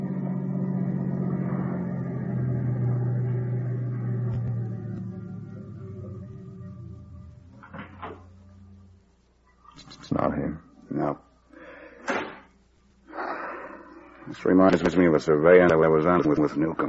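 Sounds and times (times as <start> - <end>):
car engine humming as it slows: 0.0 - 9.3
speech: 10.2 - 11.2, 14.3 - 16.8.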